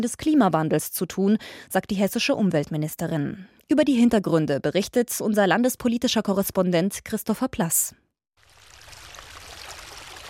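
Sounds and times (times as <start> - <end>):
speech: 0.0 - 8.0
small stream babbling through a green meadow near a city centre: 8.4 - 10.2.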